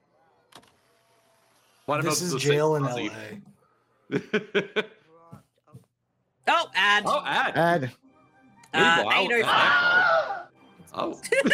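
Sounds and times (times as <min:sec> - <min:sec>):
speech: 0:01.9 - 0:03.5, 0:04.1 - 0:04.9, 0:06.5 - 0:08.0, 0:08.7 - 0:10.1, 0:11.0 - 0:11.5
laughter: 0:04.1 - 0:05.0, 0:11.2 - 0:11.5
Wilhelm scream stock sound effect, drawn-out wavering male cry: 0:08.9 - 0:10.5.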